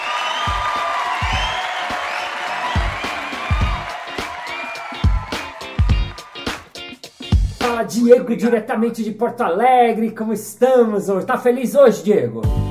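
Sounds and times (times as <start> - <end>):
people cheering and whooping: 0.0 - 6.7
small group clapping for a guest: 0.0 - 7.0
speech: 7.8 - 12.6.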